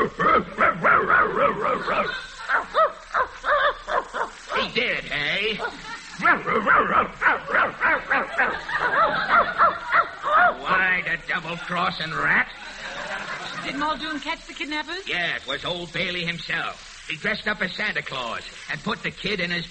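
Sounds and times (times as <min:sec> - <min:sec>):
person imitating dog barking at a leashed dog: 0:00.0 - 0:04.8, 0:05.6 - 0:10.8
laughter: 0:00.0 - 0:14.2
speech: 0:13.8 - 0:19.6.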